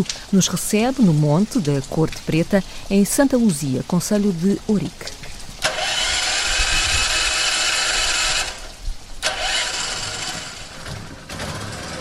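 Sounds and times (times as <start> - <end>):
speech: 0.0 - 5.3
generator powering an electric water pump on a rural farm: 5.6 - 11.9.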